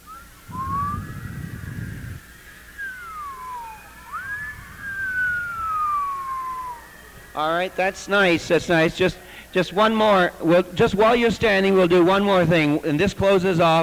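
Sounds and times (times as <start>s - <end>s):
audience whistling: 0.0s - 9.4s
speech: 7.4s - 13.8s.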